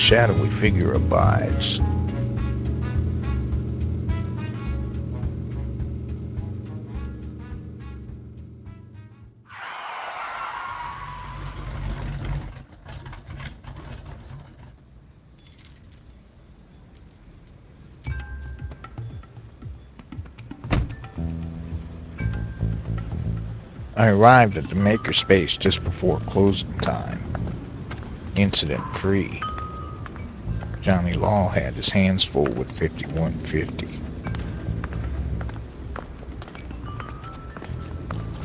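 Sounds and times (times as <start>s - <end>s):
speech: 0.0s - 1.9s, 24.0s - 27.3s, 28.4s - 29.5s, 30.8s - 34.0s
Mopar car engine rumbling: 0.0s - 38.4s
road noise of a driving vehicle: 0.0s - 38.4s
vehicle clanks and rattles: 11.4s - 24.0s, 25.7s - 38.4s.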